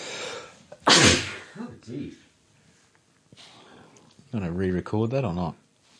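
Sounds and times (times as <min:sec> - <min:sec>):
person sneezing: 0:00.2 - 0:01.6
speech: 0:01.9 - 0:02.3, 0:04.3 - 0:05.6.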